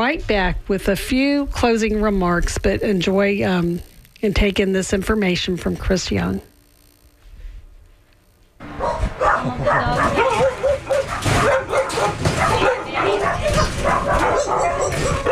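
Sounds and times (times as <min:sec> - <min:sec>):
speech: 0:00.1 - 0:06.5
several dogs barking at a foster home-based animal rescue in West Tampa: 0:08.6 - 0:15.2.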